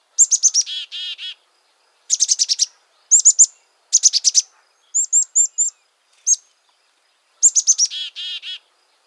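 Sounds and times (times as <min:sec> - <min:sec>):
chickadee giving its chick-a-dee call: 0:00.2 - 0:01.4, 0:02.1 - 0:06.5, 0:07.4 - 0:08.7.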